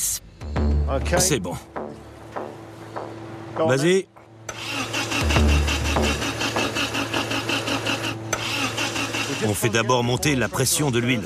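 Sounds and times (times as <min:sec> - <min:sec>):
speech: 0:00.9 - 0:01.8, 0:03.6 - 0:04.1, 0:09.4 - 0:11.2
restored car engine cranking without starting: 0:04.4 - 0:10.8.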